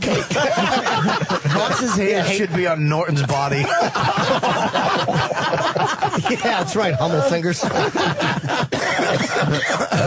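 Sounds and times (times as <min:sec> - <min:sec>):
laughter: 0:00.0 - 0:10.0
speech: 0:00.5 - 0:08.7, 0:09.4 - 0:10.0
person coughing fit with throaty rasping: 0:08.7 - 0:10.0.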